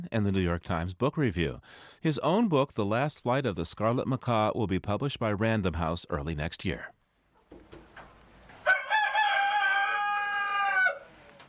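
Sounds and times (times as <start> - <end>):
speech: 0.1 - 7.0
rooster crowing on a farm: 8.6 - 11.4.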